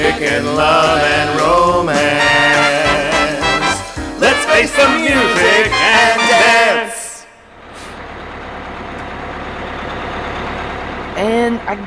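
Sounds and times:
bus engine idling in a steady rumble: 0.0 - 11.8
speech: 0.1 - 1.9
bus air brakes squealing and hissing: 7.2 - 8.1.

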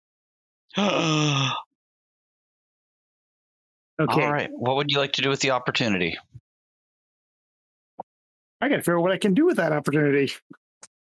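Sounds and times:
speech: 0.7 - 1.6, 4.0 - 6.4, 8.6 - 10.6
voice mimicking a shocked gasp: 0.8 - 1.7.

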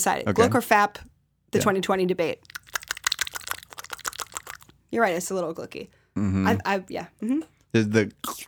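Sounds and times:
speech: 0.0 - 2.6, 4.9 - 8.4
wet clicky cheek smacks made by pinching cheeks with fingers: 2.4 - 4.8.

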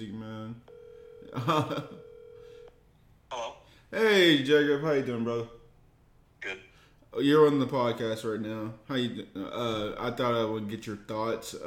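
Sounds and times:
electronic ringing tone of an outgoing phone call: 0.6 - 2.8
speech: 1.3 - 2.0, 3.9 - 5.6, 6.4 - 11.6.

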